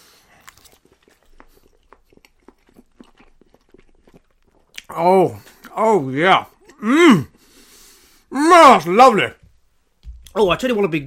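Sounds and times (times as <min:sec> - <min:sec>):
chewing beef and Yorkshire pudding: 0:00.0 - 0:05.8
speech: 0:04.9 - 0:07.3, 0:08.5 - 0:09.4, 0:10.4 - 0:11.0.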